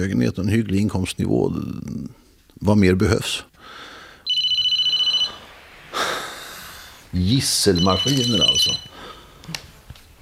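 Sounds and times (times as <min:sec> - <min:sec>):
speech: 0:00.0 - 0:03.8, 0:07.1 - 0:08.9
phone ringing with a rapid electronic trill: 0:04.3 - 0:05.5, 0:07.5 - 0:09.0.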